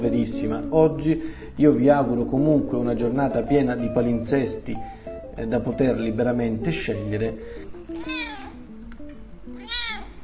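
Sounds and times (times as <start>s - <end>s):
speech: 0.0s - 7.7s
cat meowing: 7.9s - 8.7s, 9.5s - 10.2s.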